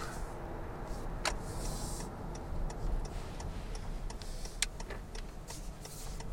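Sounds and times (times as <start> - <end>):
low engine and road rumble inside a car driving at night: 0.0 - 6.3.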